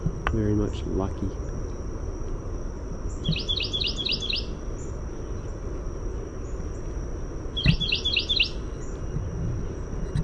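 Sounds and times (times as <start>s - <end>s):
Carolina wren singing rolling phrases: 0.0s - 9.9s
constant high whine: 0.0s - 10.2s
low background noise: 0.0s - 10.2s
speech: 0.3s - 1.5s, 3.2s - 3.8s.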